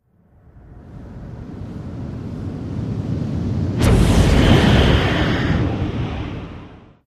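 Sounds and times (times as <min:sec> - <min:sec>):
long explosive whoo: 0:00.4 - 0:07.0
whooshes and swishes: 0:03.8 - 0:07.0.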